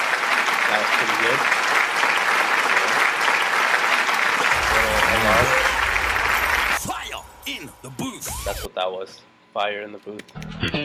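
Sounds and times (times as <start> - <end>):
crowd clapping: 0.0 - 6.9
speech: 0.7 - 1.7, 7.6 - 10.8.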